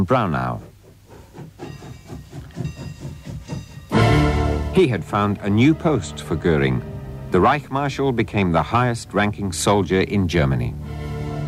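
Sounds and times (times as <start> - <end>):
speech: 0.0 - 0.7, 4.8 - 11.1
train rolling along rails chugging: 0.0 - 11.4
loud burst of hissing steam: 0.4 - 7.3.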